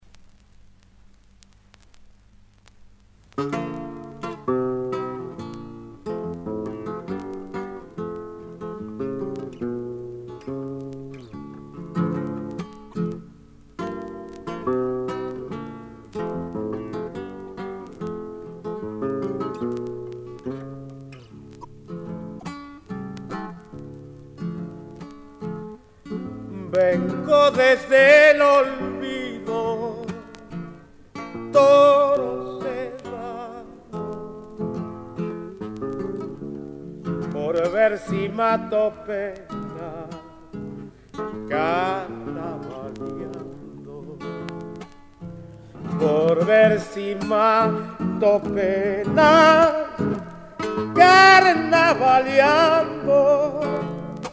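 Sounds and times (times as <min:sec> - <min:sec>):
guitar playing zamba: 0:00.0 - 0:54.3
person singing zamba: 0:26.4 - 0:30.6, 0:31.3 - 0:34.0, 0:37.2 - 0:40.3, 0:41.4 - 0:44.7, 0:45.8 - 0:54.3.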